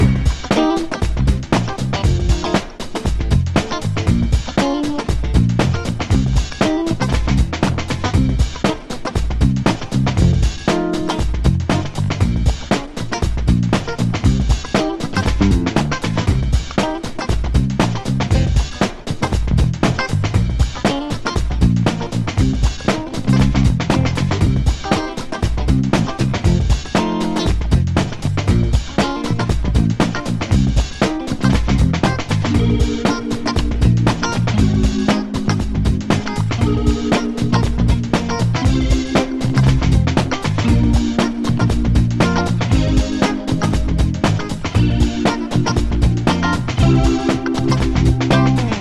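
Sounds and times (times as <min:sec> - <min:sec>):
solo instrumental loop: 0:00.0 - 0:48.7.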